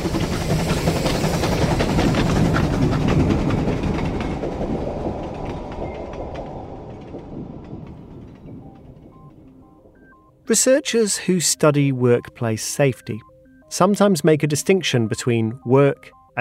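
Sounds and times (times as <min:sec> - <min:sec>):
rapid clattering train wheel clicks: 0:00.0 - 0:10.1
troop train hurtling past on the rails at Kirkpatrick: 0:00.0 - 0:10.4
speech: 0:10.5 - 0:16.3.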